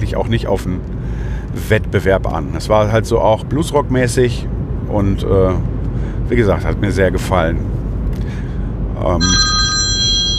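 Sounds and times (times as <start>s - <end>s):
speech: 0.1s - 5.7s, 6.3s - 8.4s, 9.0s - 9.4s
telephone ringing with a bright electronic tone: 9.2s - 10.3s.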